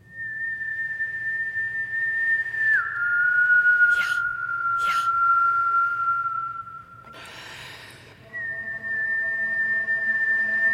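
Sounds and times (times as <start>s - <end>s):
person whistling long held notes: 0.0s - 10.7s
short breathy puffs: 7.0s - 8.2s
person inhaling: 7.0s - 8.3s.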